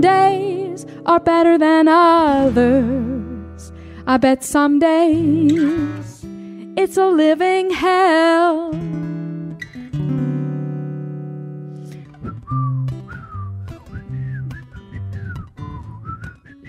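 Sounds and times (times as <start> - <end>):
speech: 0.0 - 6.1, 6.8 - 9.0
person attempting to whistle a tune: 11.9 - 16.6.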